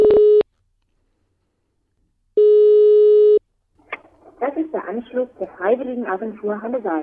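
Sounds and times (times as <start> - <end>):
telephone ringback tone calling a volunteer agency in Halle-Saale district Germany: 2.4 - 3.4
speech: 4.9 - 7.0.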